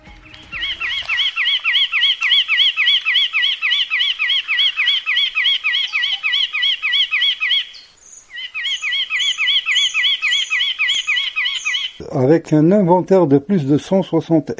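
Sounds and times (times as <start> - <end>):
Kabylie nuthatch calling in sharp repeated notes: 0.0 - 12.1
speech: 12.2 - 14.5.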